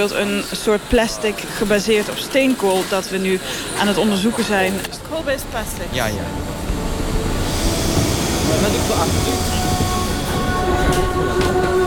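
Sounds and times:
speech: 0.0s - 6.6s, 8.5s - 9.8s
indistinct voices murmuring: 0.0s - 11.8s
metro train rumbling through an underground metro station in Pyongyang: 0.0s - 11.8s
faint high tonal whines: 5.1s - 11.8s.

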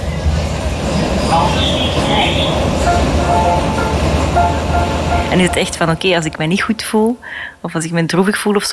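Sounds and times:
metro train squeals: 0.0s - 7.0s
metro train in motion in Berlin: 0.0s - 7.9s
speech: 4.4s - 8.7s.

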